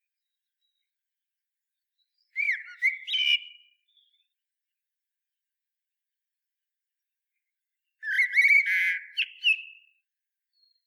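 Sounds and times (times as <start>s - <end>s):
common blackbird Turdus merula song phrase: 0.2s - 1.0s, 2.0s - 4.4s, 7.4s - 10.8s.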